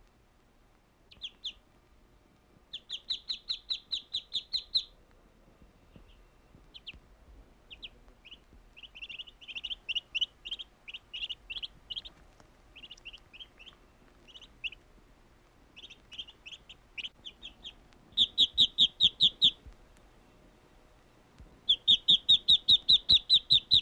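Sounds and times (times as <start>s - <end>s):
bird chirping: 1.1s - 1.6s, 2.7s - 5.0s, 5.9s - 7.0s, 7.6s - 14.8s, 15.7s - 20.4s, 21.6s - 23.8s.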